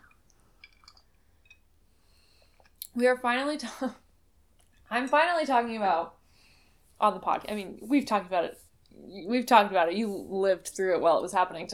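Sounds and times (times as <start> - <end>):
person sipping a drink: 0.0 - 2.9
speech: 3.0 - 4.0, 4.9 - 6.2, 7.0 - 11.7.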